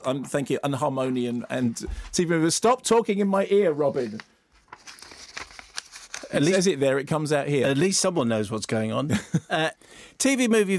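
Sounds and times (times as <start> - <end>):
speech: 0.0 - 4.3, 6.3 - 10.7
sheet of paper being picked up and rustling: 3.8 - 6.8.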